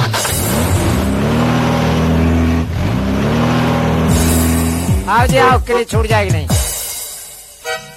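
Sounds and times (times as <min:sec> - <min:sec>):
vehicle engine revving while driven away: 0:00.0 - 0:05.5
speech: 0:05.2 - 0:06.6.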